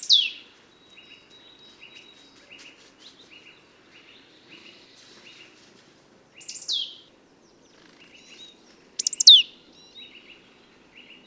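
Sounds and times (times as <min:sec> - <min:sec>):
marsh tit calls sweeping steeply downward: 0:09.0 - 0:09.4
soft repeated chirps: 0:09.0 - 0:09.4.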